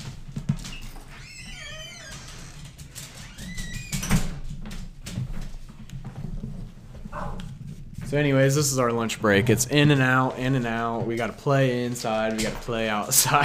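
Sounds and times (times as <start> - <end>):
door hinges squeaking as door opens to let pet out: 0.5 - 4.5
speech: 8.1 - 13.4.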